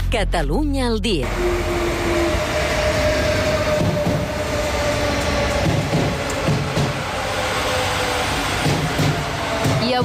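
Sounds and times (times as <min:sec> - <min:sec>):
speech: 0:00.1 - 0:01.9
train wheels rumbling on rails: 0:01.2 - 0:10.0
train clatter: 0:03.6 - 0:10.0.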